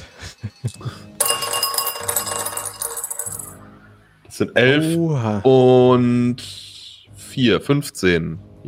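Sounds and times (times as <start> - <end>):
several dice rattling and tumbling across a hard surface: 1.2 - 3.6
speech: 4.4 - 6.6, 7.4 - 8.6.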